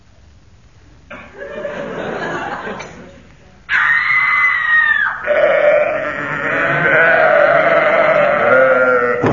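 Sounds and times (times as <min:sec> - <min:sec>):
laughter: 0:01.1 - 0:03.3
woman screaming while tripping over a sheep: 0:03.7 - 0:09.2
sacrificial sheep bleating: 0:05.2 - 0:09.2.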